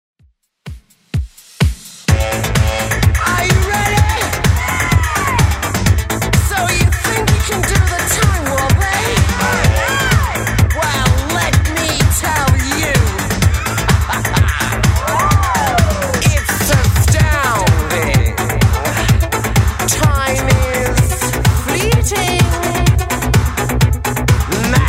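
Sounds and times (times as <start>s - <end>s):
eighties style music loop: 0.6s - 24.8s
laughter: 12.8s - 19.3s.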